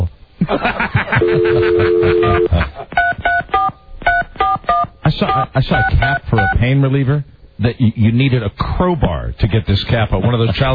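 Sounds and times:
speech: 0.4s - 3.0s, 5.1s - 10.7s
people chuckling: 0.4s - 3.3s
touch-tone beeps from a phone system's keypad: 1.7s - 6.6s.

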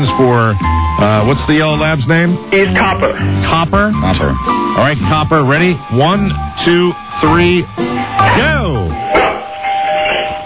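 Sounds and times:
speech: 0.0s - 9.1s
doorbell ringing with a bright two-tone chime: 8.2s - 10.4s.

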